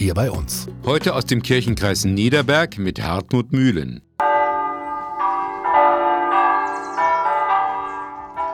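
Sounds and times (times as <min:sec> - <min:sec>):
speech: 0:00.0 - 0:04.1
Protestant church bells pealing in Schöller west of Wuppertal: 0:04.2 - 0:08.5.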